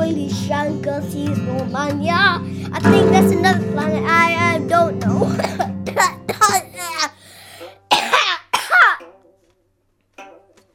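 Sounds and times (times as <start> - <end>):
speech: 0.5 - 5.6
person coughing harshly: 5.2 - 9.0.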